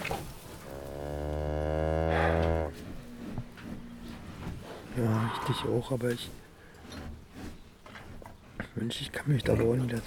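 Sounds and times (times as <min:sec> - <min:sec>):
high-yielding dairy cow mooing: 0:00.6 - 0:04.2
speech: 0:05.0 - 0:06.4, 0:08.8 - 0:10.0.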